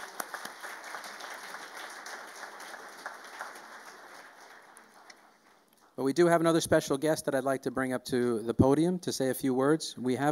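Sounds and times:
crowd applauding: 0.0s - 6.0s
speech: 6.0s - 10.3s.

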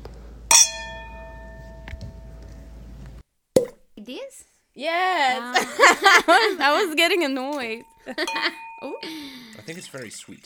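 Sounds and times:
wine glasses clinking together in a toast: 0.5s - 2.0s, 7.5s - 10.4s
speech: 4.1s - 10.4s
laughter: 5.1s - 9.9s.

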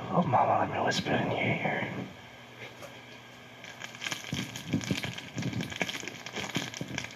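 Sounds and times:
speech: 0.1s - 2.8s
plastic lollipop wrapper crinkling while torn open: 3.6s - 7.1s.

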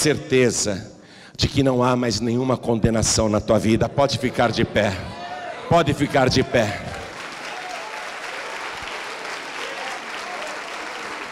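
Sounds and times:
speech: 0.0s - 6.9s
crowd of many people applauding: 6.2s - 11.2s.

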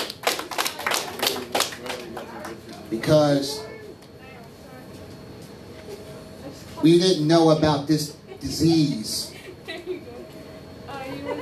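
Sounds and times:
people clapping: 0.0s - 3.0s
speech: 2.9s - 3.7s, 6.8s - 9.2s
laughter: 7.9s - 11.4s.

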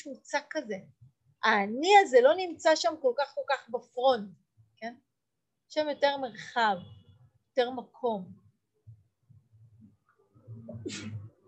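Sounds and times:
speech: 0.0s - 5.1s, 5.7s - 7.0s, 7.6s - 8.4s, 10.8s - 11.2s
person sneezing: 10.8s - 11.2s.

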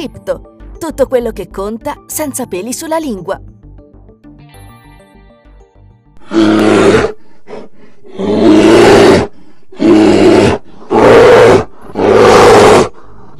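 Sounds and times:
speech: 0.0s - 3.5s
grizzly bear roaring: 6.2s - 13.0s.

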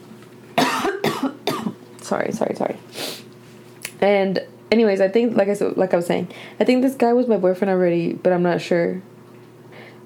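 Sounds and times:
harsh coughs: 0.6s - 1.8s
speech: 2.1s - 3.2s, 4.0s - 9.1s.

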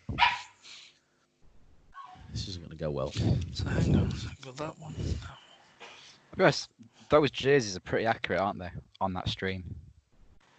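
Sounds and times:
dog barking: 0.2s - 0.6s
speech: 2.8s - 5.4s, 6.4s - 9.8s.

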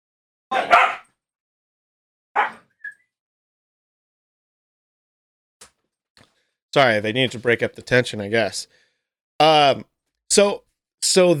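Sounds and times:
dogs fighting and barking: 0.5s - 1.1s, 2.4s - 2.7s
speech: 6.8s - 8.8s, 9.4s - 11.3s.

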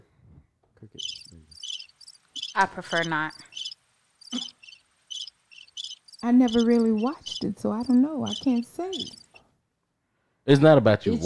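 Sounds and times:
cricket chirping sound effect: 1.0s - 9.4s
speech: 2.6s - 3.4s, 6.2s - 9.2s, 10.5s - 11.2s.

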